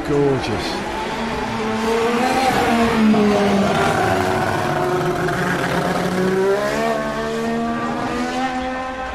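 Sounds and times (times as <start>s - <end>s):
speech: 0.1s - 0.9s
Honda-engined McLaren MP4-4 Formula One car screaming past: 0.6s - 9.1s.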